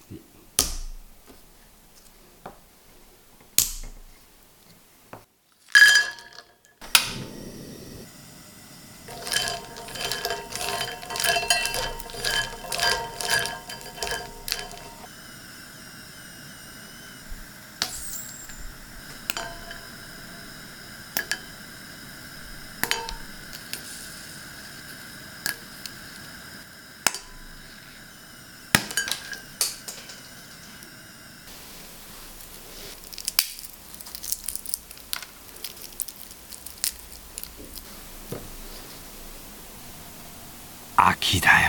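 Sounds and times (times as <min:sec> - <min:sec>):
ginkgo nuts roasting and clinking in a metal pan: 0:05.7 - 0:06.7, 0:09.1 - 0:15.1, 0:17.8 - 0:21.7, 0:22.3 - 0:24.4, 0:27.0 - 0:27.7, 0:28.7 - 0:30.8, 0:32.3 - 0:37.8
low sizzling frying hiss: 0:05.7 - 0:41.1
speech: 0:41.0 - 0:41.6.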